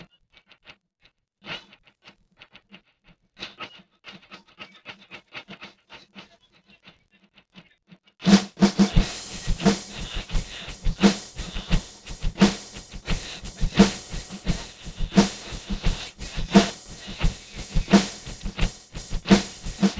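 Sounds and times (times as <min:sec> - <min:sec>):
children playing percussion: 0:08.9 - 0:19.9.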